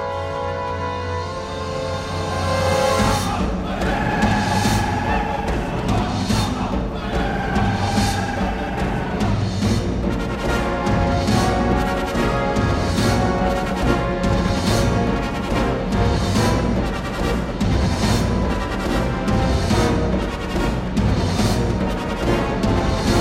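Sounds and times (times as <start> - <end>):
drums: 0.2 - 23.2.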